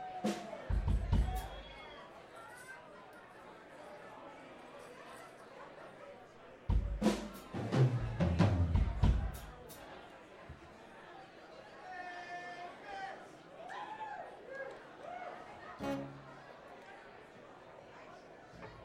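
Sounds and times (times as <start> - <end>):
live music: 0.2 - 1.8, 6.7 - 9.8, 15.8 - 16.4
instrument tuning: 15.8 - 16.4.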